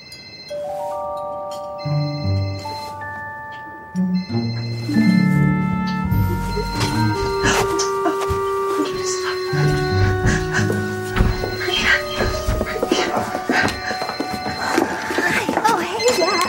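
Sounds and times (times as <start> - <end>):
phone ringing with a melodic electronic ringtone: 0.0 - 16.4
people moving around: 0.5 - 16.4
people talking: 6.2 - 16.4.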